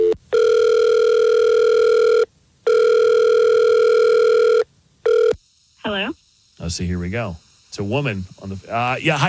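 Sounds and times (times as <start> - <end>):
telephone ringback tone on the line as a call is placed: 0.0 - 5.3
speech: 6.8 - 9.2.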